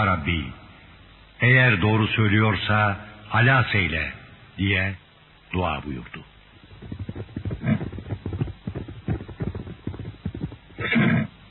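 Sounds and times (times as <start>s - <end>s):
speech: 0.0s - 0.6s, 1.4s - 6.3s
rapid rhythmic thumps: 6.5s - 11.3s
horse neighing: 6.8s - 9.9s.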